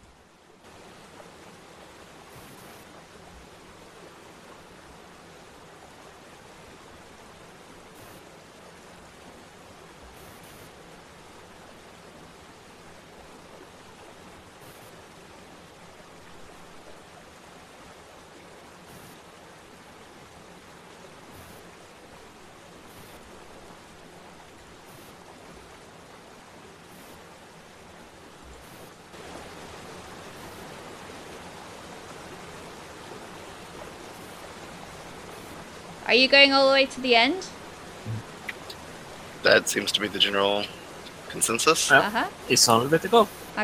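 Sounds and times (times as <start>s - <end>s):
rushing water: 0.0s - 43.6s
speech: 36.1s - 37.6s, 39.5s - 43.6s.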